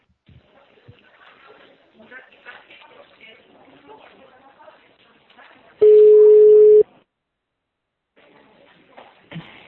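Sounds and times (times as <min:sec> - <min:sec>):
telephone ringing tone: 0:05.8 - 0:06.8.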